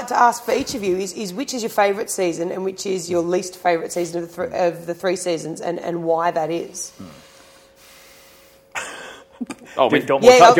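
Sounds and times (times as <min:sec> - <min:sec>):
speech: 0:00.1 - 0:07.3, 0:09.4 - 0:10.5
breathy exhale: 0:06.9 - 0:08.7.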